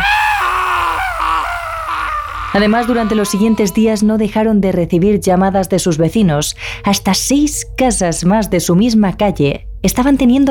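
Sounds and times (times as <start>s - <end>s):
man screaming in terror with cracking voice: 0.0s - 3.8s
speech: 2.6s - 10.5s.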